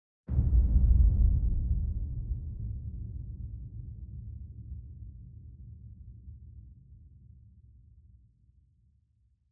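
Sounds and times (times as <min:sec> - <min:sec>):
ultra large low analog boom: 0:00.3 - 0:05.0.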